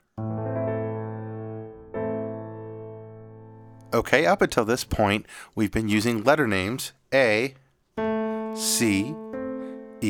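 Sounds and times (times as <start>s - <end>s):
A minor chord on a piano-like instrument: 0.1s - 4.0s, 8.0s - 10.0s
speech: 3.9s - 7.6s, 8.6s - 9.2s.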